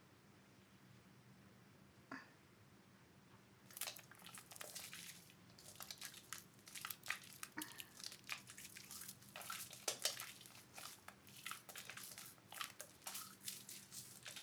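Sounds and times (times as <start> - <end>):
bare hands washing a body with water: 3.7 - 14.4.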